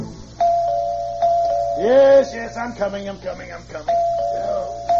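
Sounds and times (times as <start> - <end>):
buzzing doorbell: 0.3 - 2.5, 3.8 - 4.9
speech: 2.7 - 4.1.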